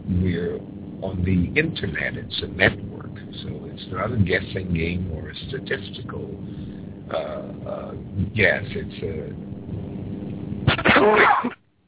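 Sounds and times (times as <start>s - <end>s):
low murmur: 0.0s - 11.5s
speech: 0.6s - 9.5s, 10.9s - 11.6s
person sneezing: 10.7s - 11.6s.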